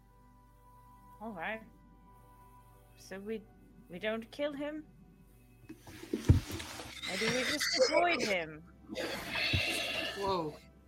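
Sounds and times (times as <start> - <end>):
speech: 1.2 - 1.8, 3.0 - 5.0, 5.7 - 6.3, 7.1 - 10.7
heavy breathing right up against a microphone: 9.0 - 10.3.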